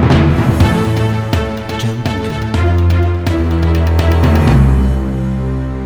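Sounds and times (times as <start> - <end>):
cinematic trailer ending outro music: 0.1 - 5.7.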